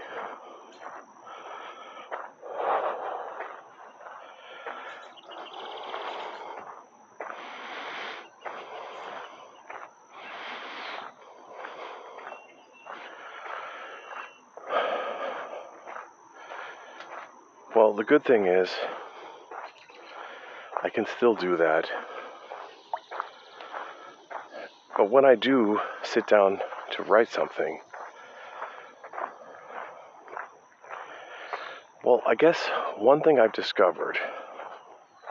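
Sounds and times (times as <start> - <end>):
breathing: 0.0 - 17.8, 18.7 - 20.9, 21.8 - 25.0, 25.6 - 27.0, 27.8 - 33.0, 34.0 - 35.2
speech: 17.8 - 19.0, 20.9 - 22.1, 25.0 - 27.9, 32.1 - 34.4.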